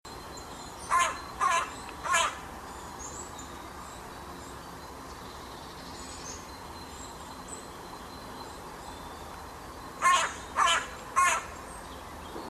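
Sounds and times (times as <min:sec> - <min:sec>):
background hiss: 0:00.1 - 0:12.4
carrion crow cawing: 0:00.9 - 0:02.4, 0:10.0 - 0:11.6.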